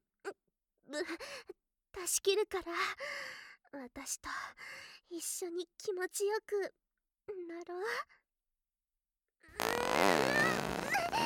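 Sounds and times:
speech: 0.9s - 6.8s, 7.5s - 8.2s
long loud buzzing fart: 9.6s - 11.2s.

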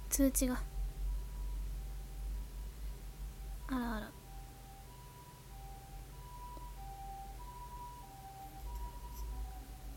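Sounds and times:
low rumbling background: 0.0s - 9.9s
speech: 0.1s - 0.7s, 3.7s - 4.2s
ambulance siren wailing in a two-tone high-low pattern: 4.2s - 9.9s.

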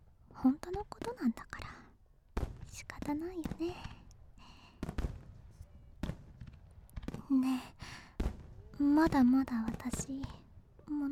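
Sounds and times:
speech: 0.4s - 1.8s, 2.8s - 4.0s, 7.3s - 7.8s, 8.8s - 11.1s
fireworks exploding overhead: 2.4s - 11.1s.

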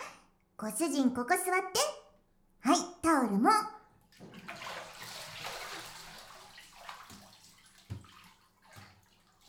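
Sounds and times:
speech: 0.6s - 2.0s, 2.6s - 4.3s
shower water spraying onto a seated person's back: 4.2s - 9.4s.

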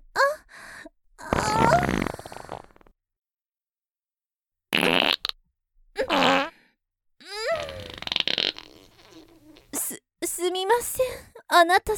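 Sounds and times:
loose uncontrollable wet buzzing farting: 1.3s - 3.0s, 4.7s - 5.4s, 6.0s - 6.5s, 7.4s - 9.7s
speech: 10.8s - 11.9s.

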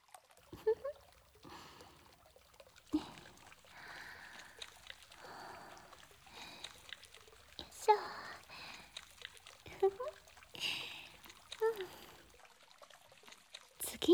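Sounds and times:
wet squelching of shampoo being lathered: 0.6s - 2.2s, 2.9s - 12.3s
liquid pouring: 0.6s - 12.4s.

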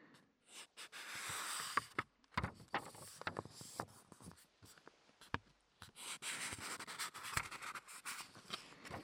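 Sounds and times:
pages of a homemade book being turned: 1.0s - 4.4s, 5.8s - 9.0s.

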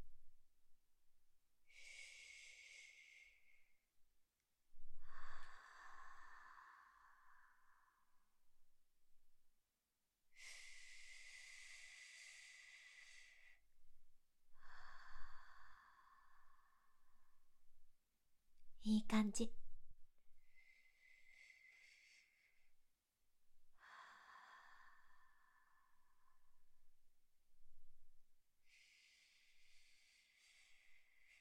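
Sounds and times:
slow deliberate breathing in and out: 1.6s - 3.9s, 4.7s - 8.5s, 10.3s - 17.8s, 20.4s - 28.0s, 28.6s - 31.3s
speech: 18.9s - 19.6s.

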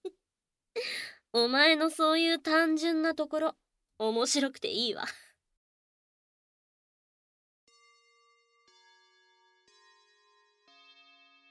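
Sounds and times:
speech: 1.3s - 5.2s
school chime ringing with bright bell-like tones: 7.7s - 11.4s.

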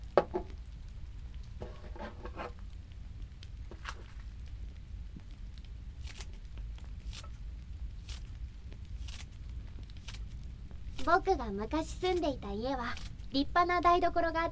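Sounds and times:
low steady hum: 0.0s - 14.5s
scissors snipping homegrown green onions onto canned chicken: 6.0s - 6.4s, 7.0s - 7.4s, 8.0s - 9.4s, 10.0s - 12.3s, 12.9s - 13.3s
speech: 11.1s - 14.5s.

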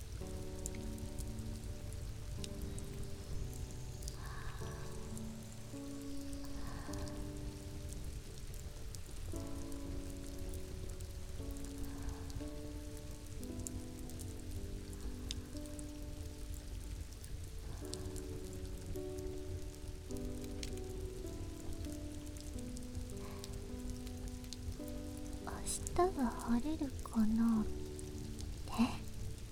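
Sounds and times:
soft slow melodic tune: 0.0s - 29.5s
steady rain pattering on a surface: 0.0s - 29.5s
speech: 26.0s - 27.8s.

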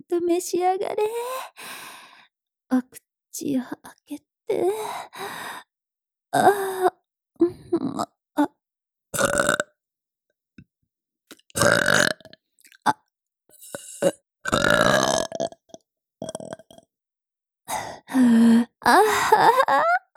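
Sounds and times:
speech: 0.1s - 1.9s, 2.7s - 5.7s, 6.3s - 8.6s, 14.0s - 14.2s, 18.9s - 19.8s
mother burping milk burps: 9.2s - 9.6s, 11.6s - 12.3s, 13.7s - 15.5s.

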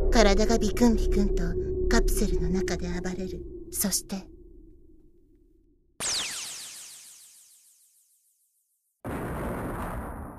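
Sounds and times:
speech: 0.2s - 4.3s
explosion with a loud burst and long rumble: 9.0s - 10.3s.

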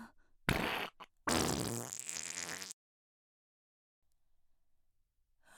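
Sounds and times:
woman farting: 0.5s - 2.8s.

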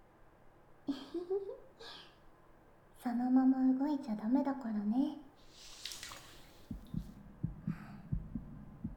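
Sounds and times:
speech: 3.1s - 5.2s
quick heartbeat heard through a chest: 6.6s - 8.9s.

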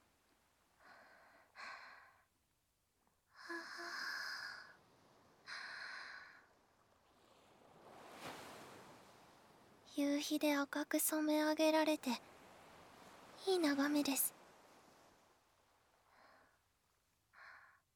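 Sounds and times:
ocean waves washing on shore at sunset: 3.8s - 16.1s
speech: 10.0s - 12.3s, 13.4s - 14.4s.

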